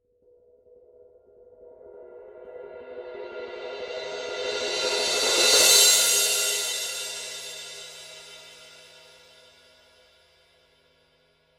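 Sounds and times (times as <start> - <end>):
Paiste 17" Signature Full Crash Cymbal roll: 3.0 - 10.3.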